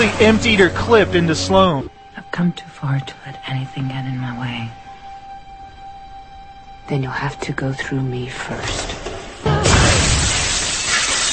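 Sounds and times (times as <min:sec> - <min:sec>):
speech: 0:00.0 - 0:04.8, 0:06.9 - 0:09.1
plate glass window shattering in a video game rooftop fight: 0:09.6 - 0:11.3.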